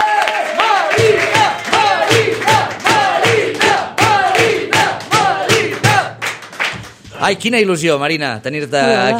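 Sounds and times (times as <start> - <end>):
studio audience clapping: 0.0 - 7.3
speech: 7.2 - 9.1.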